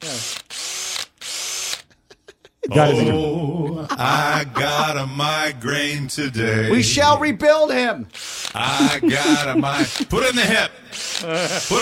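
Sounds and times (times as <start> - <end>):
power drill whirring: 0.0 - 1.9, 8.1 - 11.8
laughter: 1.8 - 5.6, 8.6 - 11.8
speech: 2.7 - 11.8.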